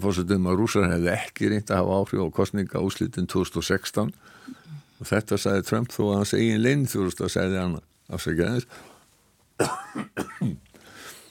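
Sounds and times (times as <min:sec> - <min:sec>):
speech: 0:00.0 - 0:08.9, 0:09.6 - 0:10.6
fainter breathy throat noise: 0:04.2 - 0:05.0
harsh, rough coughs: 0:09.6 - 0:10.7.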